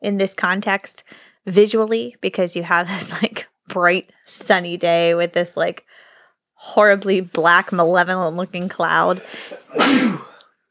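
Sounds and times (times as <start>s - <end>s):
speech: 0.0s - 6.0s, 6.6s - 10.3s
person sneezing: 9.1s - 10.4s.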